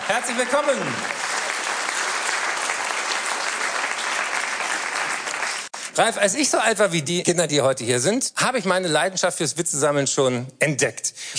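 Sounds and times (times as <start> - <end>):
audience applause: 0.0 - 5.8
speech: 0.1 - 1.3, 6.0 - 11.3.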